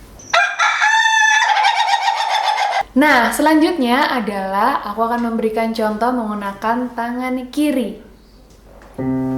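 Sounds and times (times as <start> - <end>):
rooster crowing next door: 0.3 - 2.9
speech: 3.0 - 8.1, 9.0 - 9.2.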